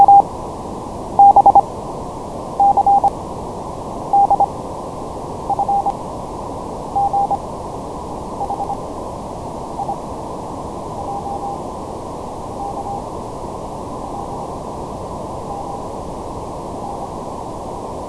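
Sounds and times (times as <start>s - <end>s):
Morse code alphabet through a 1kHz low-pass filter: 0.0s - 0.2s, 1.2s - 1.6s, 2.6s - 3.1s, 4.2s - 4.5s, 5.5s - 5.9s, 7.0s - 7.4s, 8.4s - 8.8s, 9.8s - 10.0s, 11.0s - 11.6s, 12.6s - 13.0s.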